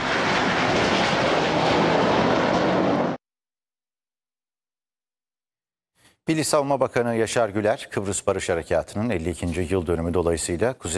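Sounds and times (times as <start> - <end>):
F-16 fighter jet engine roar during an aerobatic display: 0.0 - 3.2
speech: 6.2 - 10.9.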